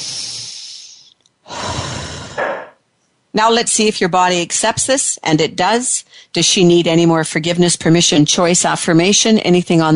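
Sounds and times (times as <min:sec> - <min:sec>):
deep breath: 0:00.0 - 0:02.8
speech: 0:03.4 - 0:09.9.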